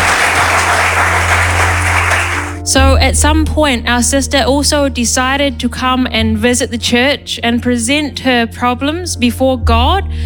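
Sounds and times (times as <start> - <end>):
congregation clapping during a church service: 0.0 - 2.7
speech: 2.7 - 10.2.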